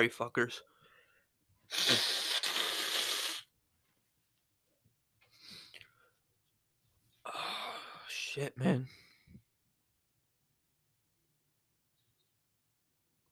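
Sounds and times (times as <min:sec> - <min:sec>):
speech: 0:00.0 - 0:00.7, 0:01.7 - 0:02.2, 0:08.4 - 0:09.0
nose blowing: 0:01.7 - 0:03.5.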